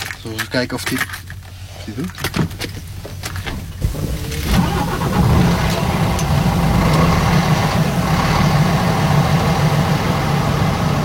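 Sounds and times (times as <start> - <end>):
speech: 0.2 - 2.6
old diesel truck engine cranking and idling: 3.6 - 11.0.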